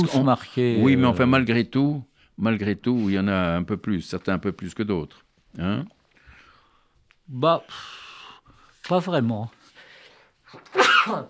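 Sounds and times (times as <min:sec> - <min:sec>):
speech: 0:00.0 - 0:06.0, 0:07.3 - 0:08.0, 0:08.8 - 0:09.6, 0:10.5 - 0:11.2
sneeze: 0:10.6 - 0:11.2.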